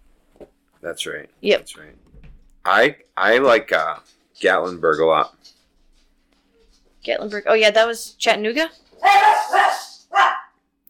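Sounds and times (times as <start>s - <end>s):
speech: 0.8s - 5.6s, 7.0s - 9.6s
dogs barking: 9.0s - 10.6s.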